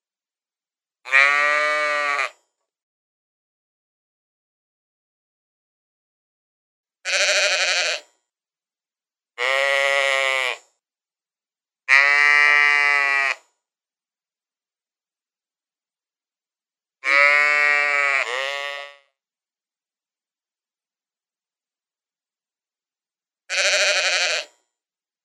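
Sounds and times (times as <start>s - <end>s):
sheep giving wavering bleats: 1.1s - 2.4s, 7.0s - 8.1s, 9.4s - 10.6s, 11.9s - 13.4s, 17.0s - 19.1s, 23.5s - 24.5s.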